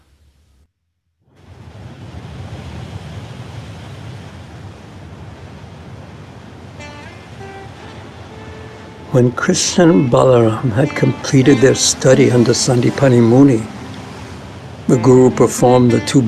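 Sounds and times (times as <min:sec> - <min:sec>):
saltwater ocean waves breaking on shore: 0:01.3 - 0:16.2
high tonal calls: 0:06.8 - 0:16.2
speech: 0:09.2 - 0:13.8, 0:14.9 - 0:16.2.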